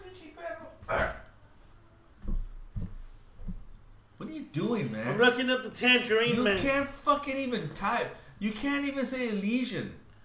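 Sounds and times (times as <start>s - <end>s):
dog barking: 0.9s - 1.3s
speech: 4.4s - 10.0s.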